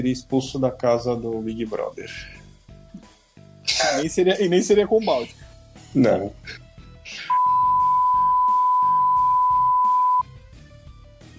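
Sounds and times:
speech: 0.0s - 2.4s, 3.8s - 7.4s
censor bleep tone masking speech: 7.3s - 10.2s.

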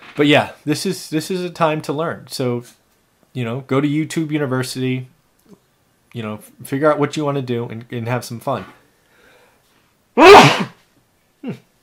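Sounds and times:
speech: 0.2s - 2.8s, 3.4s - 8.8s, 10.2s - 10.7s
person sneezing: 10.2s - 10.8s.

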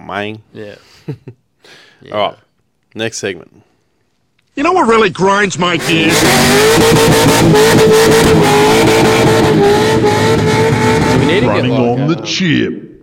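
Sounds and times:
speech: 0.1s - 3.7s, 4.6s - 12.8s
LS V8 engine revving against the rev limiter: 5.5s - 12.4s.

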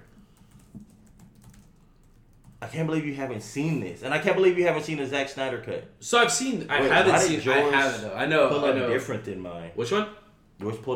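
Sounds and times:
rapid typing on a computer keyboard: 0.0s - 2.6s
speech: 2.7s - 10.9s.

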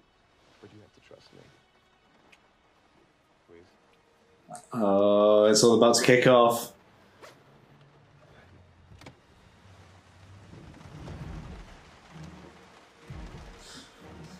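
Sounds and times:
heavy rain pouring in a film scene: 0.0s - 14.3s
speech: 0.6s - 1.7s, 3.5s - 3.8s, 4.5s - 6.8s
low rumbles and thuds: 8.8s - 13.9s.

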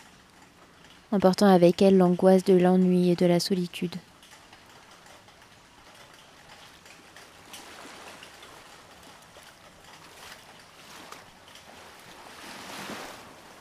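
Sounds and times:
speech: 1.1s - 4.1s
ocean waves crashing: 7.6s - 8.8s, 10.1s - 13.5s.

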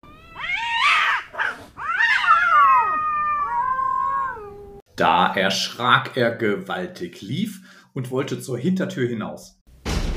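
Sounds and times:
angry cat yowling and caterwauling: 0.0s - 4.8s
speech: 5.0s - 9.6s.

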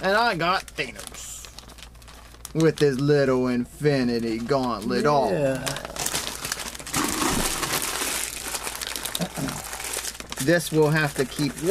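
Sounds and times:
speech: 0.0s - 1.3s, 2.5s - 5.9s, 10.4s - 11.7s
wrapping paper crinkling and rustling as gathered up by hand: 0.0s - 11.7s.

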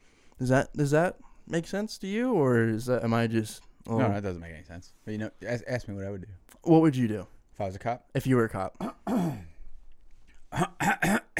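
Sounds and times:
speech: 0.4s - 9.5s, 10.5s - 11.2s
harsh gravelly throat clearing: 8.8s - 9.6s, 10.5s - 11.3s.

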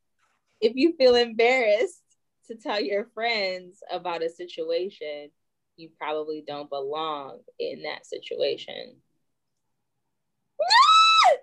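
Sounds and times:
speech: 0.6s - 9.0s
high-pitched human scream: 10.6s - 11.4s.

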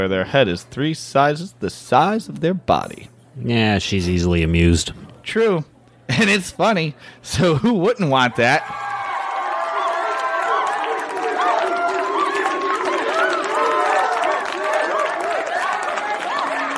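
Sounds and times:
speech: 0.0s - 8.8s
dense excited crowd clamoring and cheering: 8.2s - 16.7s.

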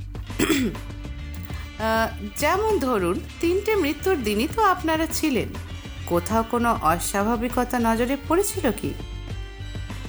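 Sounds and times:
woman clearing her throat: 0.4s - 0.8s
speech: 0.4s - 1.0s, 1.8s - 9.1s.

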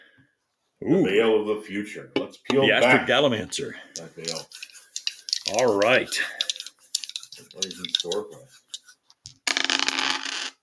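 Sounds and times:
speech: 0.8s - 4.7s, 5.5s - 6.5s, 7.4s - 8.7s
dice clattering across a hard surface: 4.3s - 8.2s, 9.2s - 10.6s.

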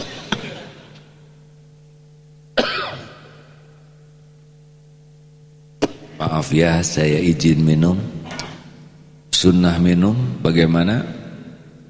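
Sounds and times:
low steady hum: 0.0s - 11.8s
person coughing: 2.6s - 3.6s
speech: 6.2s - 8.2s, 9.4s - 11.2s.

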